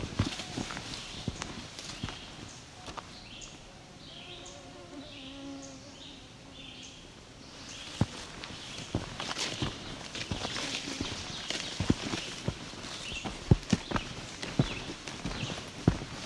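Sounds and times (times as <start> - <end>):
footsteps crunching along a trail: 0.0 - 3.7, 7.6 - 16.2
ovenbird singing ringing two-note phrases: 0.8 - 16.2.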